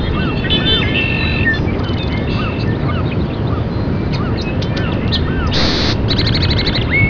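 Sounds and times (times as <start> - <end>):
birds calling with downslurred whistles and twittering notes: 0.0 - 7.0
constant low rumble: 3.8 - 7.0
buzzy burst: 5.5 - 6.2.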